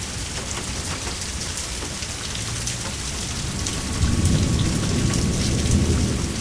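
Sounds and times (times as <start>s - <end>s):
heavy rain hissing: 0.0s - 6.4s
low rolling rumble of thunder: 2.9s - 6.4s.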